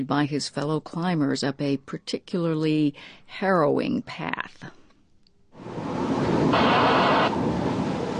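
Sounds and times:
speech: 0.0s - 4.8s
strong wind on a mountain in windy snowy weather: 5.6s - 8.1s.

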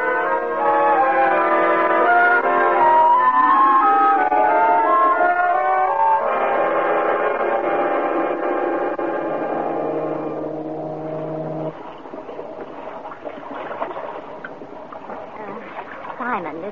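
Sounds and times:
ferry boat's deep steady droning tone: 0.0s - 11.9s
people talking: 15.4s - 16.7s.

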